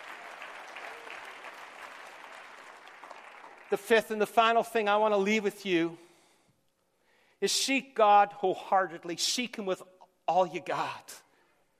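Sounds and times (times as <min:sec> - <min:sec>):
audience clapping in praise: 0:00.0 - 0:03.8
speech: 0:03.7 - 0:06.0, 0:07.4 - 0:11.2.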